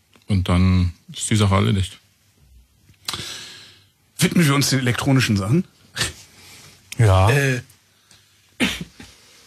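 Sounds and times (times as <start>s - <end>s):
speech: 0.3s - 2.0s, 4.2s - 6.1s, 7.0s - 7.7s
person coughing: 8.6s - 9.1s.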